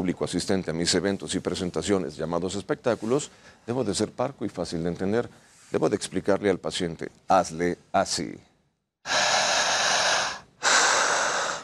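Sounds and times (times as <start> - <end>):
speech: 0.0 - 9.2
forceful controlled diaphragmatic breathing: 9.0 - 11.6.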